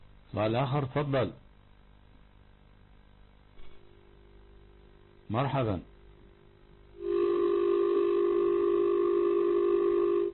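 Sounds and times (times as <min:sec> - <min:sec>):
speech: 0:00.3 - 0:01.4, 0:05.3 - 0:05.9
telephone line tone after a phone-in call is cut off: 0:07.0 - 0:10.3.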